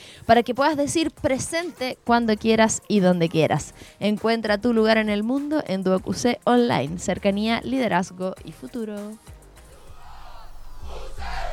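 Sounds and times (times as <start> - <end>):
speech: 0.3 - 9.4
crowd cheering and roaring: 9.8 - 11.5
people shouting: 9.8 - 11.5.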